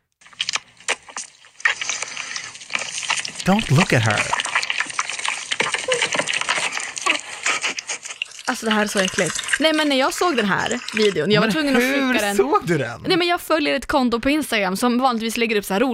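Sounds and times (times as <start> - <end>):
woman eating live octopus with wet smacking chewing: 0.2 - 12.3
speech: 3.4 - 4.4, 8.6 - 15.9.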